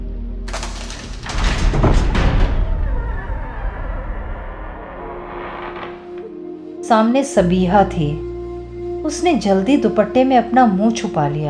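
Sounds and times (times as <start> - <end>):
door opening: 0.5 - 6.4
speech: 6.9 - 8.3, 9.0 - 11.4.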